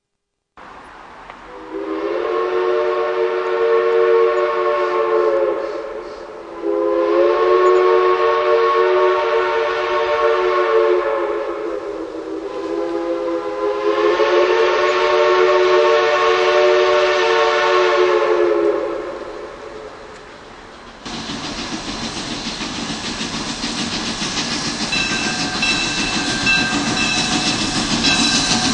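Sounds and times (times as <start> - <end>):
three-chime steam whistle: 1.5 - 20.0, 24.5 - 28.7.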